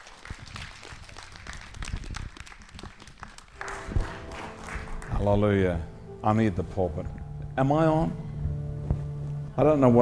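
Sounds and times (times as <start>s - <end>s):
audience applause: 0.0s - 5.9s
speech: 5.2s - 8.2s, 9.6s - 10.0s.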